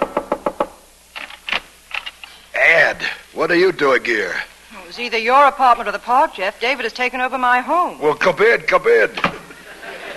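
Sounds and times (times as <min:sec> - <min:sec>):
sharp loud knocks on a door: 0:00.0 - 0:00.8
speech: 0:02.9 - 0:09.3
laughter: 0:09.4 - 0:10.1.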